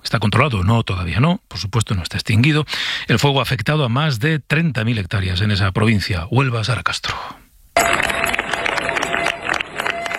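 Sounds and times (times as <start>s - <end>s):
speech: 0.1s - 8.0s
neighbours clapping for departing emergency crews: 7.8s - 10.1s.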